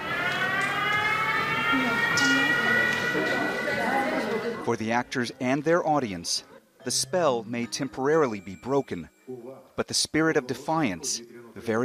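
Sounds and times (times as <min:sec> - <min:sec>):
siren wailing in Kyiv: 0:00.0 - 0:04.7
speech: 0:04.7 - 0:11.8.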